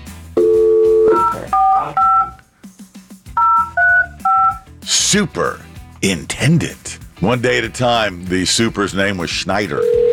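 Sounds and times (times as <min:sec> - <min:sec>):
faint music bed: 0:00.0 - 0:10.1
touch-tone beeps of a phone number being dialed: 0:00.4 - 0:02.4, 0:03.4 - 0:04.6
speech: 0:05.1 - 0:10.0.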